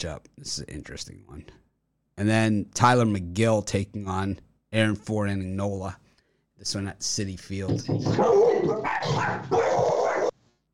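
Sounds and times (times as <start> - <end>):
speech: 0.0 - 1.6, 2.2 - 6.0, 6.6 - 9.9
dog barking loudly with long rough barks: 8.1 - 10.3.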